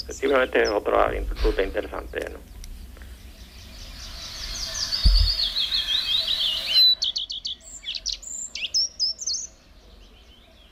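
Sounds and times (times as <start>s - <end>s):
common redstart singing: 0.0s - 10.7s
speech: 0.1s - 2.6s
low rumble of wind or handling: 5.0s - 5.4s.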